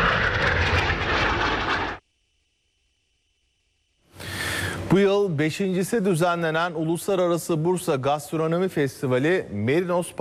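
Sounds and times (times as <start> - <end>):
jet aircraft of an aerobatic team roaring at an air show finale: 0.0 - 2.0
speech: 4.9 - 10.2.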